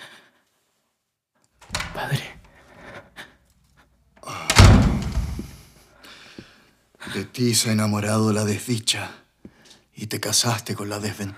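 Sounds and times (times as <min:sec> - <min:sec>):
wooden door being opened: 0:01.6 - 0:02.2, 0:04.3 - 0:05.6
speech: 0:02.0 - 0:02.4, 0:07.2 - 0:09.2, 0:10.0 - 0:11.3.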